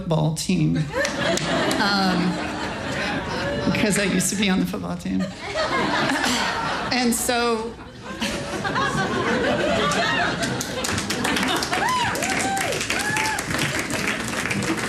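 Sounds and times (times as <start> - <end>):
speech: 0.1 - 2.5, 3.6 - 7.9
laughter: 0.8 - 4.3, 5.1 - 14.8
crowd cheering and whooping: 8.7 - 14.8
audience applause: 9.4 - 14.8.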